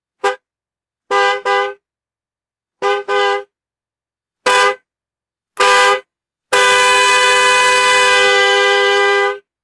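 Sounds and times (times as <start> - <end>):
exterior car horn blasts: 1.1 - 1.8, 2.8 - 3.5, 4.5 - 4.8, 5.6 - 9.5.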